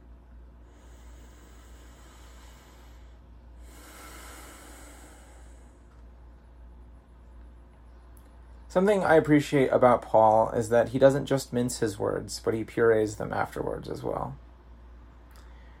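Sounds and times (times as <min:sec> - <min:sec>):
slow deep breath drawn in during a church sermon: 0:00.6 - 0:06.0
speech: 0:08.7 - 0:14.4.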